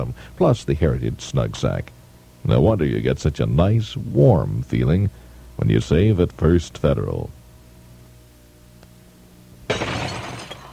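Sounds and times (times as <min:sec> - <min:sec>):
speech: 0:00.0 - 0:07.4
car windshield glass shattering: 0:09.7 - 0:10.7
crunching and tinkling glass debris settling: 0:09.7 - 0:10.7.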